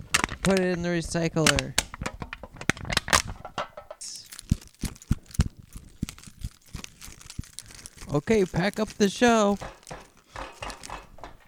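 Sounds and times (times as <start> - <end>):
speech: 0.4 - 1.8, 8.1 - 9.8
paper being crumpled up in the hands: 4.0 - 11.0.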